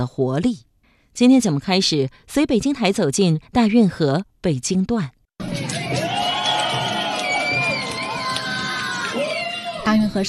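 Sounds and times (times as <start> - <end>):
speech: 0.0 - 5.2, 9.9 - 10.2
large crowd cheering and shouting at a dragon boat race on the Grand Canal in Beijing: 5.4 - 10.2.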